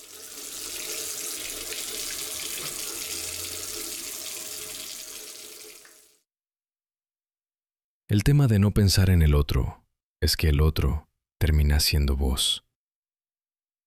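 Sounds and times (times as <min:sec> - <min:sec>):
water running from a kitchen tap: 0:00.0 - 0:06.2
speech: 0:08.1 - 0:12.6.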